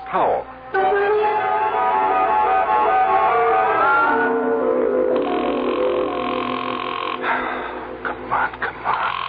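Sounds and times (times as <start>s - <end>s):
dense steady noise: 0.0s - 9.2s
speech: 0.1s - 0.6s
telephone ringing unanswered with a buzzing trill: 4.0s - 7.5s.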